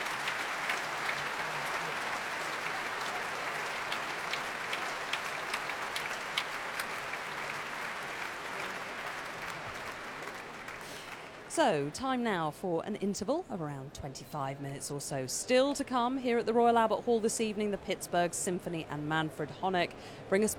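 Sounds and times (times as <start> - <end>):
orchestra players applauding in a concert hall: 0.0 - 11.5
speech: 11.6 - 20.5.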